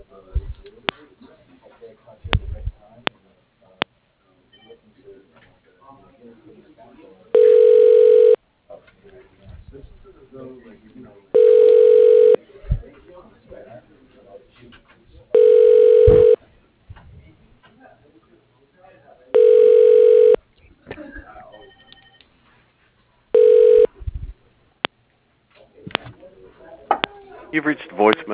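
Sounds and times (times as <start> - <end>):
faint noise: 0.0 - 28.3
telephone line ringback tone during call transfer to an office extension: 7.4 - 8.4, 11.4 - 12.4, 15.4 - 16.4, 19.4 - 20.4, 21.6 - 22.2, 23.4 - 23.9
speech: 27.6 - 28.3.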